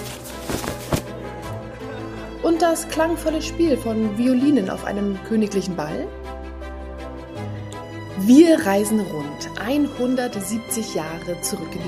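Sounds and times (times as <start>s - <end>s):
large silk dresses rustling and swishing: 0.0s - 1.2s
speech: 2.5s - 6.2s, 8.2s - 11.8s.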